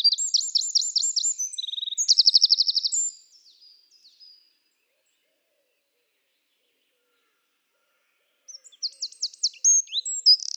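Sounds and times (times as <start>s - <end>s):
Eurasian wren singing: 0.0s - 3.2s, 8.5s - 10.5s.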